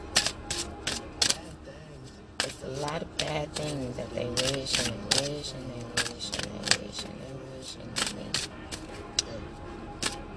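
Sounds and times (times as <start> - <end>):
faint low hum: 0.0 - 10.3
deck of cards being shuffled: 0.1 - 1.5, 2.4 - 7.2, 7.8 - 9.3, 10.0 - 10.3
speech: 2.8 - 8.7.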